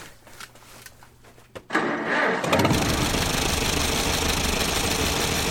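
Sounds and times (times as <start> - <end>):
old restored tractor engine cranking, sputtering and idling: 1.7 - 5.4.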